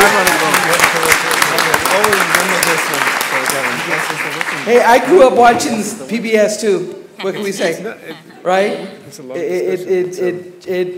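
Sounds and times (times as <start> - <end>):
crowd applauding: 0.0 - 5.3
speech: 4.7 - 10.9.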